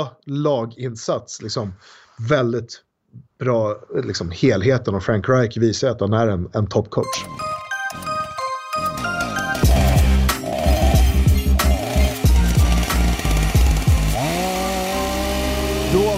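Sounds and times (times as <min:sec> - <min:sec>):
speech: 0:00.0 - 0:07.5
chainsaw engine revving: 0:09.0 - 0:16.1.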